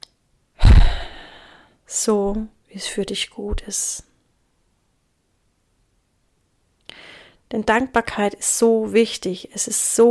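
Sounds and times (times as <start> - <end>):
deep sigh-like breath out during a calming breathing exercise: 0.6 - 1.8, 6.9 - 7.4
speech: 2.0 - 4.1, 7.5 - 10.1.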